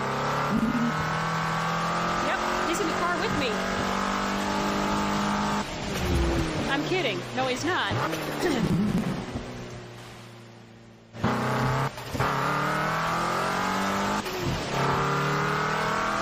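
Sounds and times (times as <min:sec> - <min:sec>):
racing car engine droning and revving in a racing game: 0:00.0 - 0:09.7, 0:11.2 - 0:16.1
thunder booming in a racing game: 0:05.9 - 0:06.7
speech: 0:06.9 - 0:08.8.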